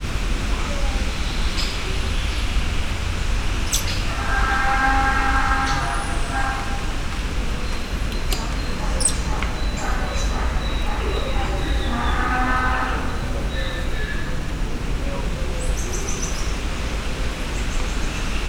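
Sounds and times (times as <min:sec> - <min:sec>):
distant bellowing: 0:00.0 - 0:17.6
wind: 0:00.0 - 0:18.4
golden-headed lion tamarin: 0:00.5 - 0:16.9
Hungarian landrace donkey: 0:04.0 - 0:15.4.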